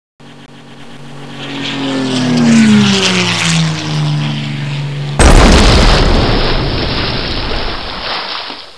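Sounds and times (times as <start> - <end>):
P51 propeller plane passing: 0.2 - 8.2.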